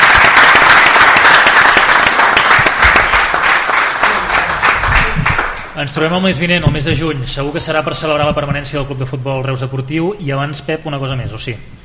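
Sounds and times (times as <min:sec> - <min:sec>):
live audience applause: 0:00.0 - 0:05.8
speech: 0:05.8 - 0:11.8.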